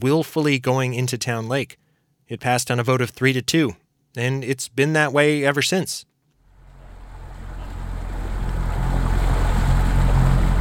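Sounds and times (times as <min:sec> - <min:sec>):
speech: 0:00.0 - 0:06.1
boat motor humming on a lake: 0:06.4 - 0:10.5
rushing water: 0:06.5 - 0:10.5
wind noise: 0:06.7 - 0:10.5.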